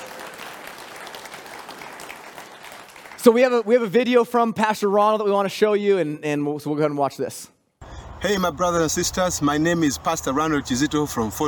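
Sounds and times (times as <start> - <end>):
church audience applauding: 0.0 - 3.6
speech: 3.2 - 7.6, 8.2 - 11.4.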